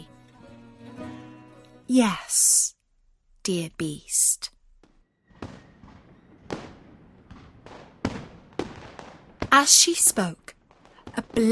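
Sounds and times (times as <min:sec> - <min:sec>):
speech: 0:01.9 - 0:02.7, 0:03.4 - 0:04.5, 0:09.5 - 0:10.5, 0:11.2 - 0:11.5
fireworks and guns banging and popping: 0:04.8 - 0:09.9, 0:10.5 - 0:11.5
fireworks crackling tails: 0:05.4 - 0:11.5.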